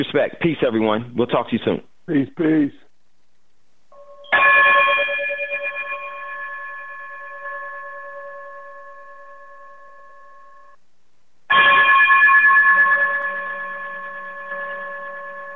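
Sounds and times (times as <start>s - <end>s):
speech: 0.0s - 2.8s
bright bell-like sign-off chime: 4.0s - 10.8s, 11.5s - 15.5s.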